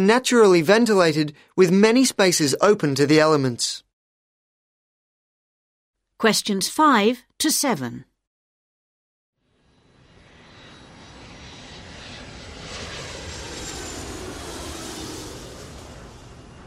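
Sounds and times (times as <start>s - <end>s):
speech: 0.0s - 3.8s, 6.2s - 8.1s
jet airplane roaring past: 9.4s - 16.6s.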